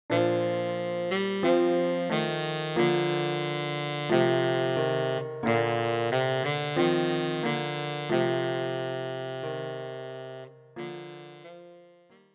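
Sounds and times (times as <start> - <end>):
piano: 0.1 - 12.3
tenor saxophone: 0.1 - 12.3.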